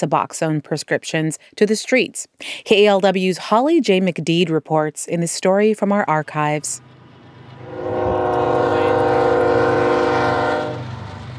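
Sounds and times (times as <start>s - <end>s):
speech: 0.0s - 6.9s
low rumble of rail noise from passing train: 6.3s - 11.3s
passing train horn blast along train tracks in Bay Point by the Delta: 7.1s - 11.2s.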